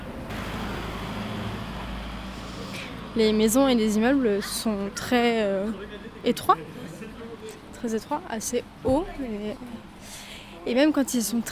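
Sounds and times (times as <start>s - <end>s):
truck passing on a street: 0.0s - 5.6s
speech: 3.2s - 6.8s, 7.8s - 11.5s.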